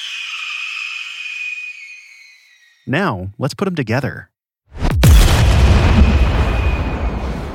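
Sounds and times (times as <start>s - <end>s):
red-tailed hawk screech: 0.0s - 2.9s
speech: 2.9s - 4.3s
explosion with long rumbling tail: 4.8s - 7.5s.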